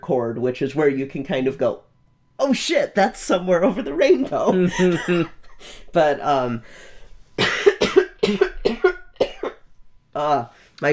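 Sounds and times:
speech: 0:00.1 - 0:07.6, 0:08.3 - 0:08.9, 0:10.2 - 0:10.9
laughter: 0:04.0 - 0:05.9
woman coughing into her elbow: 0:07.4 - 0:09.6.

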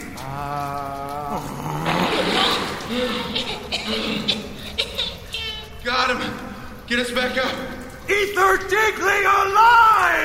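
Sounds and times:
vocal exclamation: 0:00.0 - 0:04.5
water geyser erupting from a well: 0:00.0 - 0:10.2
speech: 0:06.9 - 0:10.2.

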